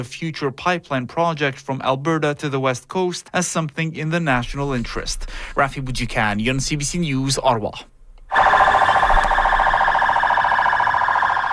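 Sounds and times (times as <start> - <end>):
speech: 0.0 - 8.0
sirens blaring on a military and police convoy: 8.3 - 11.5.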